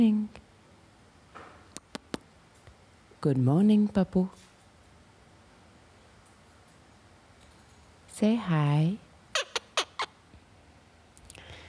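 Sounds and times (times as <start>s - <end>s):
speech: 0.0s - 0.4s, 3.2s - 4.4s, 8.2s - 9.0s
bird calling in harsh raspy bursts: 9.3s - 10.2s.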